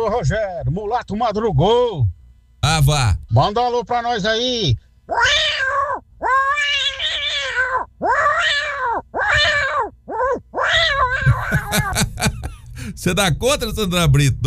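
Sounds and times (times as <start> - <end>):
speech: 0.0 - 5.4, 11.7 - 12.3, 12.9 - 14.4
cat meowing: 5.1 - 11.9
laughter: 11.2 - 13.0.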